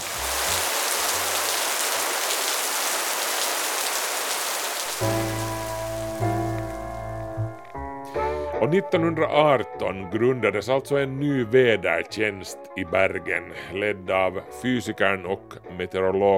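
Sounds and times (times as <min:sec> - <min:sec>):
steady rain hissing on a surface: 0:00.0 - 0:07.8
sustained musical tones: 0:05.0 - 0:09.1
speech: 0:08.6 - 0:16.3.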